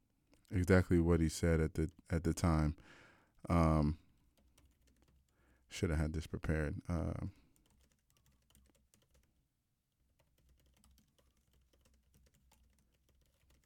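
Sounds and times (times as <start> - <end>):
speech: 0.5 - 4.0, 5.7 - 7.4
fast typing on a computer keyboard: 4.2 - 5.6, 7.3 - 9.4, 10.1 - 13.6.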